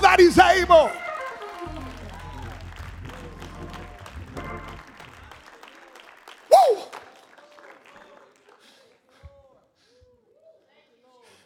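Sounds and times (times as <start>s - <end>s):
church audience clapping and cheering: 0.0s - 9.5s
deep droning musical backing in church: 1.6s - 5.0s.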